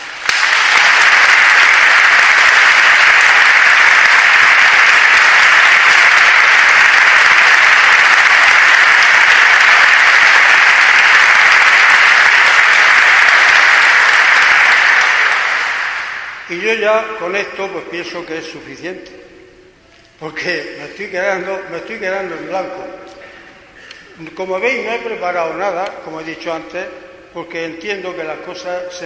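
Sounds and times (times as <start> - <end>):
audience applause: 0.0 - 16.5
speech: 16.6 - 19.3, 20.2 - 23.1, 24.2 - 29.0.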